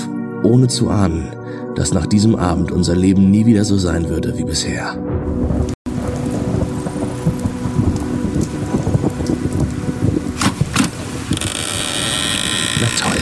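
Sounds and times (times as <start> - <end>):
speech: 0.4 - 5.8
steady rain: 5.5 - 13.2
wind: 5.9 - 13.2
rain splashing: 6.1 - 13.2.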